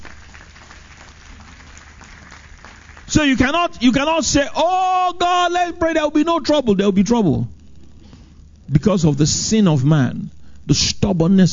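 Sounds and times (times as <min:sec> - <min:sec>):
audience applauding: 0:00.0 - 0:03.5
speech: 0:03.1 - 0:07.6, 0:08.8 - 0:11.5.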